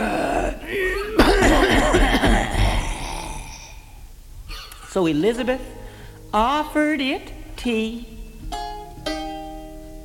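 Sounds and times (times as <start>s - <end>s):
voice imitating a dragon coughing out smoke: 0.0s - 3.7s
speech: 5.0s - 8.2s.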